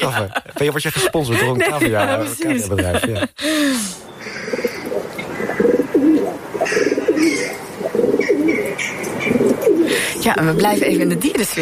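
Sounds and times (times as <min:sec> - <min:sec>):
laughter: 0:00.0 - 0:03.6
speech: 0:00.0 - 0:04.0, 0:10.3 - 0:11.6
pigeon cooing inside a chimney: 0:04.5 - 0:11.2.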